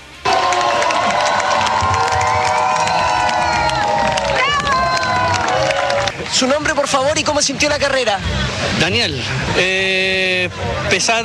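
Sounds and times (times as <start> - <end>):
large crowd cheering at a race finish in Valdivia: 0.2 - 7.1
speech: 6.4 - 10.1, 10.9 - 11.2.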